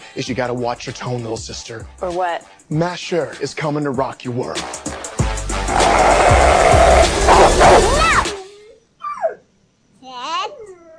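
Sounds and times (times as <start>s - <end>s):
speech: 0.2s - 5.0s
loud rough wash of noise: 5.6s - 8.4s
dog barking and yelping: 7.0s - 8.4s
dog giving a short high whining yelp: 7.3s - 8.4s, 9.0s - 9.4s.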